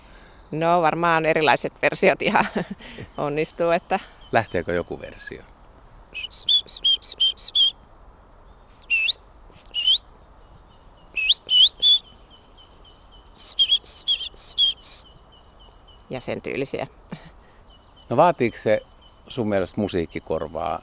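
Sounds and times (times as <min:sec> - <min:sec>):
speech: 0:00.5 - 0:05.5, 0:06.1 - 0:06.6, 0:16.1 - 0:17.2, 0:18.1 - 0:20.8
laughter: 0:02.3 - 0:03.1
person whistling an imitation of great tit song: 0:06.2 - 0:07.8, 0:08.7 - 0:10.0, 0:11.1 - 0:12.2, 0:13.3 - 0:15.0.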